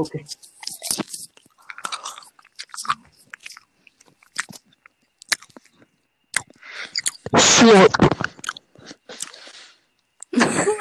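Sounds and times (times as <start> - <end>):
speech: 0.0 - 0.8, 7.6 - 8.2
wet slurping mouth noises: 0.3 - 4.6, 6.3 - 9.7.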